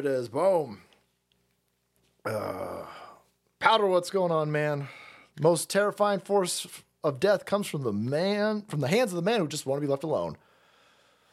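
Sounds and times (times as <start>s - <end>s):
speech: 0.0s - 0.9s, 2.2s - 3.0s, 3.6s - 10.5s
long rough guttural belch: 2.2s - 3.2s.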